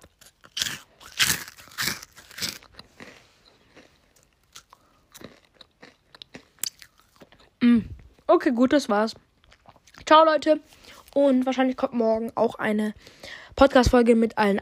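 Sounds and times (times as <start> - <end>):
crunching bites into a crisp rice cake: 0.0 - 7.5
wet chewing and lip-smacking: 0.0 - 8.3, 9.2 - 11.2
speech: 7.6 - 9.2, 10.1 - 14.6.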